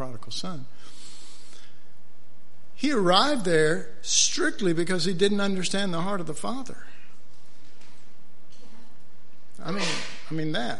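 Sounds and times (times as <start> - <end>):
speech: 0.1 - 1.0, 2.8 - 7.0, 9.6 - 10.7
person sneezing: 9.6 - 10.3.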